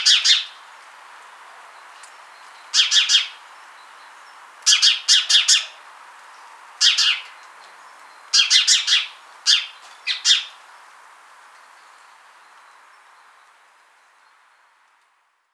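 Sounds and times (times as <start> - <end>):
house sparrow Passer domesticus chirping: 0.0 - 0.5, 2.3 - 5.8, 8.1 - 10.6.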